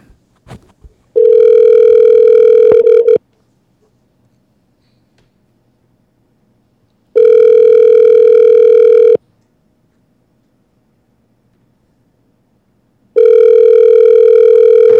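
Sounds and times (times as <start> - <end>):
outgoing phone call ringback tones: 1.2 - 3.2, 7.2 - 9.2, 13.2 - 14.9.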